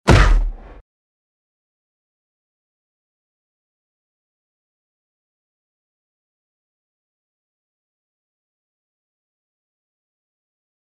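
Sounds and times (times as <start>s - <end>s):
human falling: 0.1s - 0.8s.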